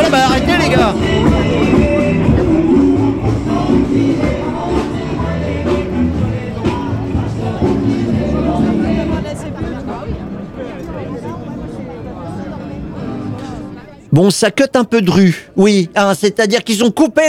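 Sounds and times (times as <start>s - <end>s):
loud amplified music from union sound truck at street protest: 0.0s - 10.2s
crowd chatter at outdoor street protest: 0.0s - 17.2s
speech: 14.4s - 17.2s.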